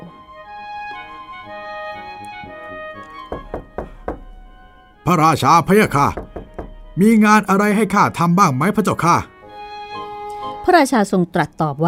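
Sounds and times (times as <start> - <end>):
soft sustained musical background: 0.0 - 11.8
knocking on a wooden door: 3.3 - 4.8, 5.6 - 7.2
speech: 5.1 - 6.2, 7.0 - 9.3, 10.6 - 11.8.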